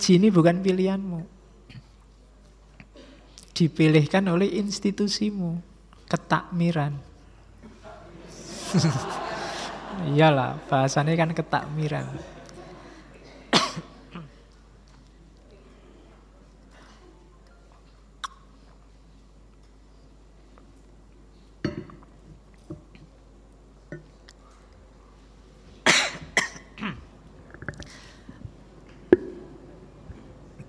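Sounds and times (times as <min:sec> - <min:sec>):
speech: 0:00.0 - 0:01.8, 0:03.6 - 0:07.1, 0:08.7 - 0:09.2, 0:10.0 - 0:12.4
people coughing during a philosophy study gathering: 0:02.8 - 0:03.4, 0:07.6 - 0:10.0, 0:12.0 - 0:14.5, 0:25.8 - 0:27.2
throat-clearing during a philosophy study gathering: 0:02.8 - 0:03.4, 0:13.4 - 0:14.4, 0:25.9 - 0:27.1
laughter: 0:07.6 - 0:14.2.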